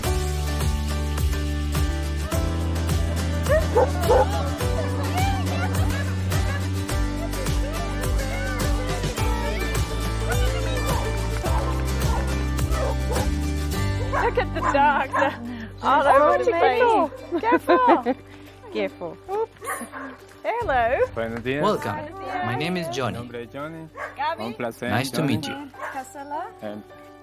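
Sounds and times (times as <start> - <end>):
crowd of stray dogs barking and yelping at a sanctuary: 0.2 - 15.4, 24.0 - 24.3
laughter: 2.6 - 21.2
stray dogs making howl-like cries: 3.3 - 15.4
speech: 20.1 - 27.1.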